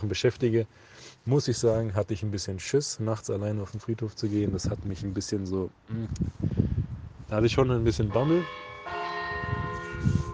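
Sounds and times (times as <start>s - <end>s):
speech: 0.0s - 6.6s, 7.3s - 10.2s
church bells ringing: 7.9s - 10.3s.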